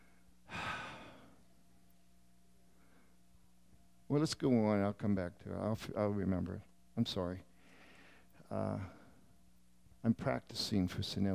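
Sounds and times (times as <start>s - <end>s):
breathy yawn with long airy exhale: 0.5s - 1.3s
speech: 4.1s - 7.5s, 8.5s - 9.0s, 10.0s - 11.3s.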